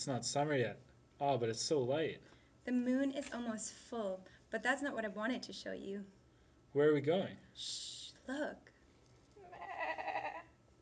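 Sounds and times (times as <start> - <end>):
speech: 0.0 - 8.7
mother sheep bleating outdoors at night: 9.4 - 10.5.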